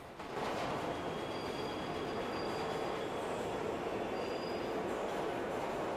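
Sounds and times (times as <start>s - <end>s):
underground train carriage with standing passengers running along the tracks: 0.0s - 5.9s
faint high wheel squeals of an underground train: 0.9s - 4.8s.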